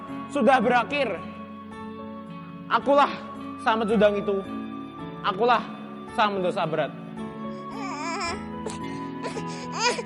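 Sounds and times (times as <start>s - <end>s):
speech: 0.3s - 1.4s, 2.7s - 4.6s, 5.2s - 7.0s
infant crying in wavering wails: 7.4s - 10.0s.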